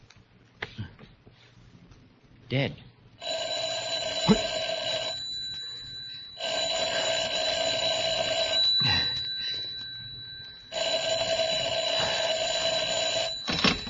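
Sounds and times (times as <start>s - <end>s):
speech: 2.5s - 2.8s, 4.2s - 4.5s
telephone ringing with a buzzy electric bell: 3.2s - 13.8s.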